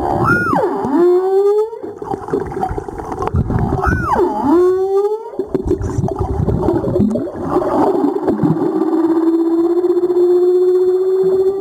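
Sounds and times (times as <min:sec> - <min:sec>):
humpback whale call: 0:00.0 - 0:02.0, 0:03.7 - 0:05.4, 0:08.5 - 0:11.5
gurgling crackly water noise: 0:00.0 - 0:11.5.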